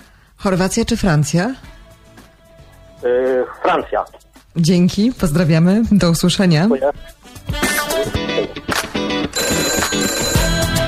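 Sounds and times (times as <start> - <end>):
speech: 0.4 - 1.7, 3.0 - 8.7
telephone bell ringing: 9.4 - 10.8.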